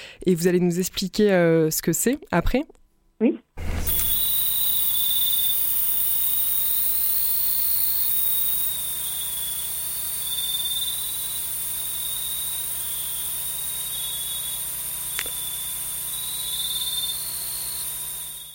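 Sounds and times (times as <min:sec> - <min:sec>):
speech: 0:00.2 - 0:03.9
insects trilling and buzzing in a tropical forest at night: 0:03.9 - 0:18.5.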